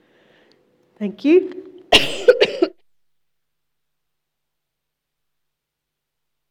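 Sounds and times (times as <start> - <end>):
speech: 1.0 - 1.6
harsh coughing: 1.9 - 2.8.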